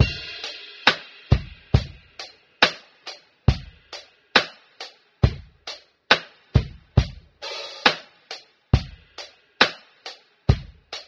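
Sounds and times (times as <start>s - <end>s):
funk boombap drum loop: 0.0s - 11.0s.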